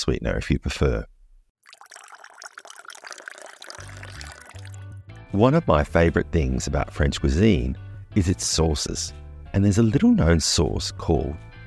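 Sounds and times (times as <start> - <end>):
speech: 0.0 - 1.1, 5.3 - 11.5
boiling water pouring into a teapot holding mint: 1.6 - 5.0.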